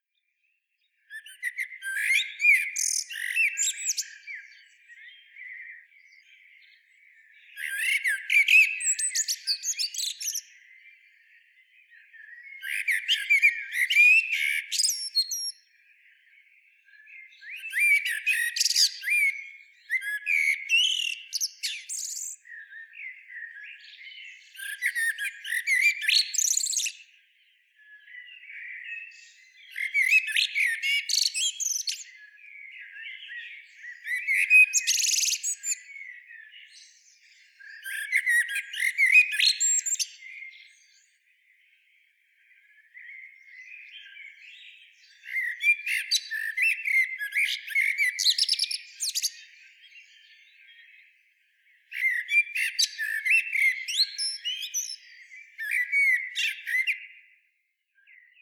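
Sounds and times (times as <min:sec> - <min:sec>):
Turdus merula singing: 0:00.9 - 0:57.4, 0:58.0 - 0:58.4.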